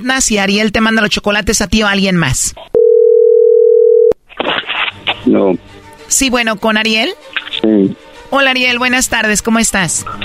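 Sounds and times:
speech: 0.0s - 2.7s, 5.2s - 10.2s
telephone dial tone: 2.8s - 4.2s.

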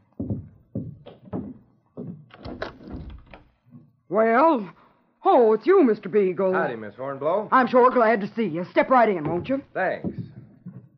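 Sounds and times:
heavy dull knocks on a wooden door: 0.2s - 3.3s, 9.2s - 10.8s
speech: 4.1s - 10.2s.

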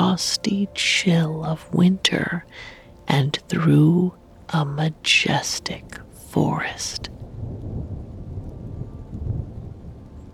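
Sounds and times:
speech: 0.2s - 7.2s
heavy rain against the window of a train descending a mountain through a forest: 7.2s - 10.3s.

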